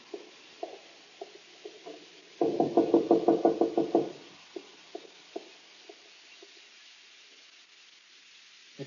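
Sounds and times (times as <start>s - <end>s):
knocking on a wooden door: 2.4s - 4.2s.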